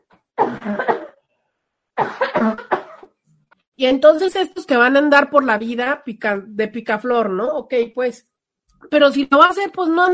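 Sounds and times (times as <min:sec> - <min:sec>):
harsh coughing: 0:00.4 - 0:01.2, 0:02.0 - 0:03.2
speech: 0:00.6 - 0:00.9, 0:02.0 - 0:02.7, 0:03.8 - 0:08.3, 0:08.9 - 0:10.1.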